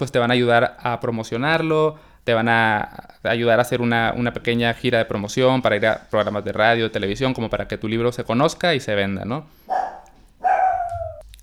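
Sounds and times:
speech: 0.0 - 9.7
dog barking with whiny tail: 9.7 - 11.2.

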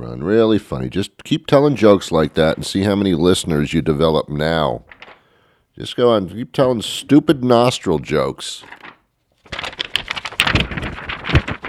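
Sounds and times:
speech: 0.0 - 5.0, 5.8 - 8.8
piece of paper rustling and crinkling while handled: 4.9 - 5.2, 8.6 - 11.6.

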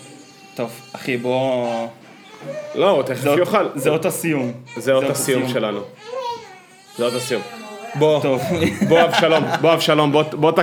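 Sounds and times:
baby crying: 0.0 - 3.0, 4.4 - 8.6
speech: 0.6 - 6.2, 7.0 - 10.6
laughter: 8.3 - 10.3.

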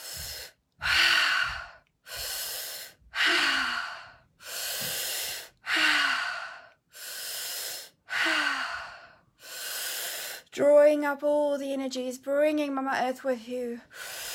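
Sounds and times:
deep forceful breathing in and out through the mouth during a guided breathing exercise: 0.0 - 10.4
speech: 10.6 - 14.0.

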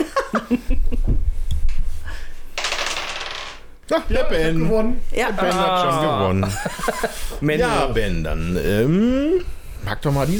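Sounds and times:
laughter: 0.0 - 1.0, 5.4 - 7.5
speech: 0.5 - 0.8, 3.9 - 10.3
dice clattering and rattling across a hard floor: 2.6 - 3.7.

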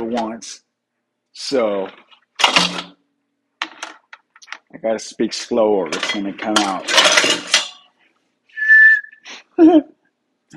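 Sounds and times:
speech: 0.1 - 0.6, 1.4 - 3.0, 4.7 - 7.5, 9.6 - 10.5
person without dentures whistling through the gap in their teeth: 8.5 - 9.3.

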